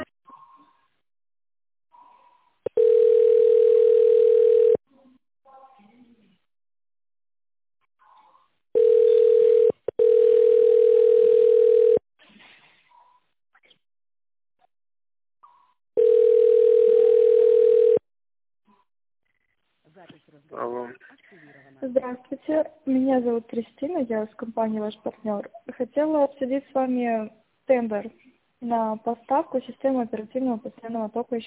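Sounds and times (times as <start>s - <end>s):
telephone ringback tone while a business phone call is transferred: 2.7s - 4.8s, 8.8s - 12.0s, 16.0s - 18.0s
speech: 23.1s - 31.4s.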